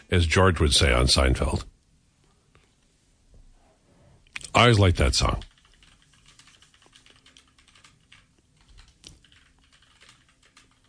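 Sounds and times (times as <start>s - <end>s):
speech: 0.1s - 1.7s, 4.5s - 5.5s
typing on a computer keyboard: 5.2s - 10.8s.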